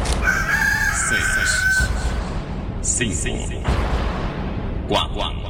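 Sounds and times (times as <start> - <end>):
rooster crowing: 0.2 - 2.3
speech: 3.0 - 4.0, 4.9 - 5.4.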